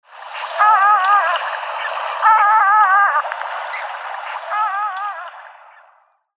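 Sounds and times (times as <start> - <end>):
surf scoter Melanitta perspicillata calling: 0.5 - 5.4.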